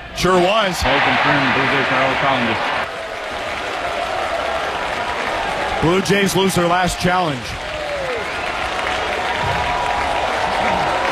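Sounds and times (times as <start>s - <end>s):
baseball stadium crowd cheering: 0.0s - 11.1s
speech: 0.2s - 2.8s, 5.8s - 7.6s
scattered clapping: 2.8s - 11.1s.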